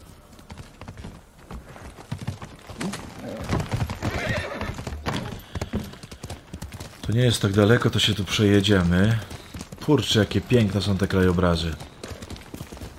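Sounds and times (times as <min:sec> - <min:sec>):
horse hooves clip-clopping: 0:00.0 - 0:12.9
ridden horse whinnying: 0:02.8 - 0:05.4
speech: 0:07.1 - 0:11.9.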